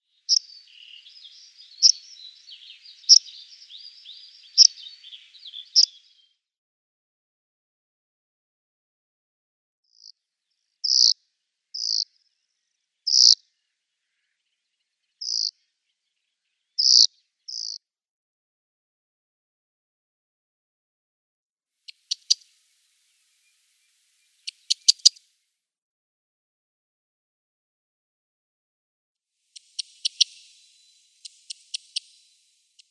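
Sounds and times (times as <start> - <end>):
Corn Bunting calls: 0.0 - 6.4, 10.8 - 11.2, 11.8 - 12.2, 13.0 - 17.8, 21.9 - 25.2, 29.5 - 32.8.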